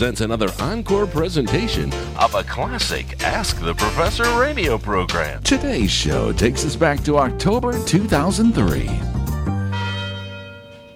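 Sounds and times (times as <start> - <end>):
speech: 0.0 - 9.2
university tower chimes ringing: 9.6 - 10.9.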